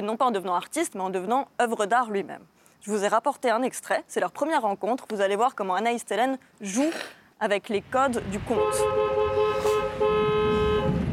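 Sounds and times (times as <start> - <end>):
speech: 0.0 - 9.2
car horn honking: 8.5 - 11.1.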